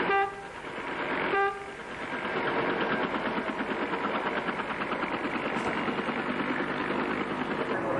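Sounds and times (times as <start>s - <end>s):
brief horn-like tonal blasts: 0.0s - 2.1s
American-made helicopter rotor blades turning in Lebanon: 0.0s - 7.9s
helicopter engine roar: 0.0s - 7.9s.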